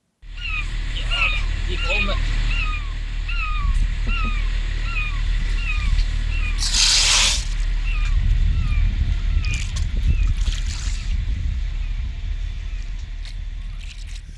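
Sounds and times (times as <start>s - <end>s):
steady low engine rumble from a Norwegian ship: 0.2s - 14.3s
beluga whale chirping and whistling in squeaky calls: 0.4s - 11.2s.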